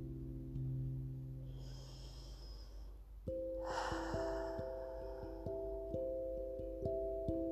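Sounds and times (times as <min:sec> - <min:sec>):
soft music with sustained tones and gentle plucked notes: 0:00.0 - 0:07.5
deep airy breath in and long slow exhale: 0:01.5 - 0:03.0, 0:03.6 - 0:05.6.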